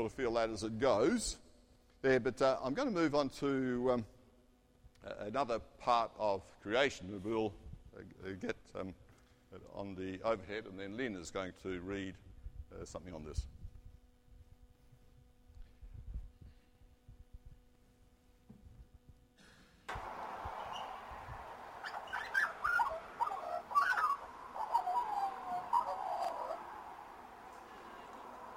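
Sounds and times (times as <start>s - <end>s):
speech: 0.0s - 1.4s, 2.0s - 4.2s, 5.0s - 13.6s
steady hiss: 0.0s - 28.5s
Australian magpie carolling: 20.2s - 27.5s.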